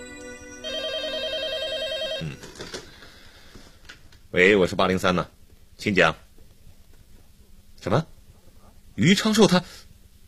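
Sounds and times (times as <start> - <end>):
telephone ringing with a warbling electronic trill: 0.0 - 3.1
speech: 2.2 - 2.8, 4.3 - 6.2, 7.8 - 8.1, 9.0 - 10.2.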